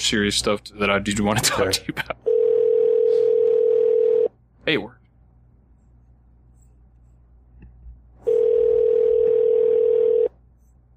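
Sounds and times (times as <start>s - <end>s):
speech: 0.0s - 2.3s, 4.7s - 5.0s
faint low hum: 0.0s - 10.9s
telephone ringing on a call: 2.3s - 4.3s, 8.2s - 10.4s.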